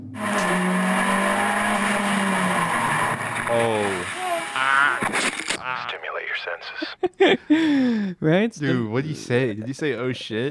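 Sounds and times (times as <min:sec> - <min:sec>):
racing cars roaring: 0:00.0 - 0:04.6
racing car tires squealing: 0:00.2 - 0:05.2
speech: 0:06.4 - 0:10.5.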